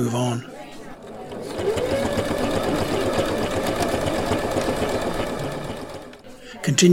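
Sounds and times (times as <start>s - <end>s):
faint voices murmuring: 0.0s - 6.9s
sewing machine whirring: 1.0s - 6.2s.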